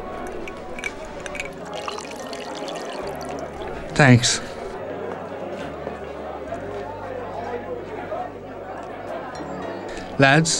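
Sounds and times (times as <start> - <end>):
water poured into a pint glass with ice: 0.0 - 4.8
murmur of voices: 0.0 - 10.5
speech: 4.0 - 4.5, 10.2 - 10.5.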